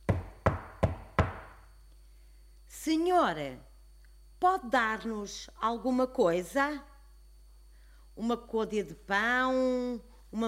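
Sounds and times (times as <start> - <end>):
knocking on a palace door: 0.1 - 1.6
speech: 2.8 - 3.7, 4.4 - 6.9, 8.2 - 10.4.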